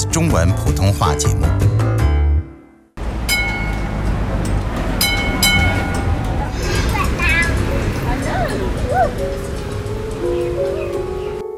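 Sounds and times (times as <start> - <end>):
speech: 0.0 - 1.7
city street noise in central Melbourne Australia: 3.0 - 11.4
tram bells clanging in central Melbourne Australia: 3.0 - 11.4.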